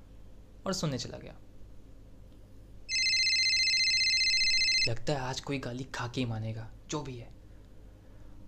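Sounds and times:
speech: 0.6 - 1.5, 4.8 - 7.4
phone ringing with a bright electronic tone: 2.9 - 4.9.

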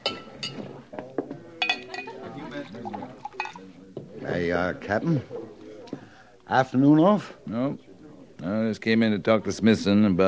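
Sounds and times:
glasses clinking as a glass of rye whiskey is served: 0.0 - 0.8, 1.6 - 3.7
speech: 4.4 - 5.4, 6.5 - 10.2.

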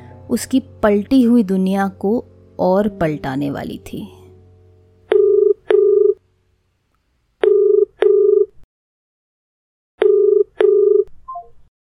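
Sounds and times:
speech: 0.3 - 4.2
telephone ringback tone in steady double bursts: 5.1 - 6.2, 7.4 - 8.5, 10.0 - 11.1.

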